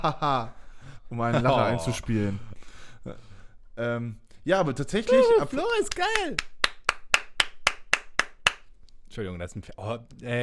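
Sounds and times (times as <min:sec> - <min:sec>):
speech: 0:00.0 - 0:06.5, 0:09.1 - 0:10.4
laughter: 0:05.1 - 0:06.4
hands clapping: 0:05.1 - 0:08.7.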